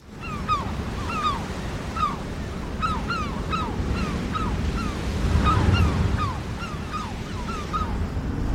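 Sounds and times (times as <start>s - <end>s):
sharp repeated seabird calls: 0.1s - 8.1s
sea swell and waves along the coast: 0.1s - 8.5s.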